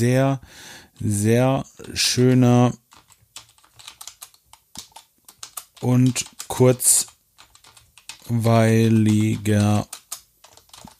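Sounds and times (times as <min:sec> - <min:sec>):
speech: 0:00.0 - 0:02.8, 0:05.8 - 0:07.1, 0:08.3 - 0:10.0
typing on a computer keyboard: 0:02.8 - 0:10.9.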